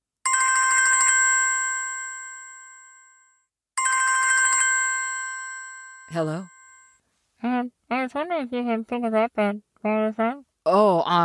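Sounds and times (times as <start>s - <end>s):
mobile phone ringtone with bright electronic trill: 0.3s - 7.0s
speech: 6.1s - 6.5s, 7.4s - 11.2s.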